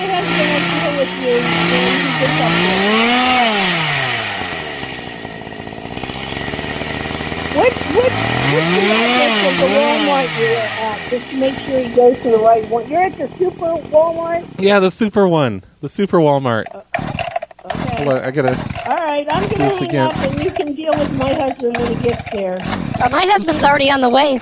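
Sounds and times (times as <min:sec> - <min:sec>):
chainsaw cutting items up and revving: 0:00.0 - 0:24.3
speech: 0:01.1 - 0:03.0, 0:08.1 - 0:17.0, 0:17.6 - 0:24.3.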